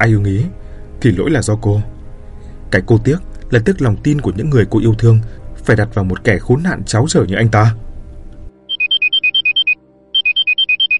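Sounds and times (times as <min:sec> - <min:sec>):
speech: 0:00.0 - 0:01.9, 0:02.7 - 0:07.8
mobile phone ringtone ringing: 0:08.7 - 0:10.9.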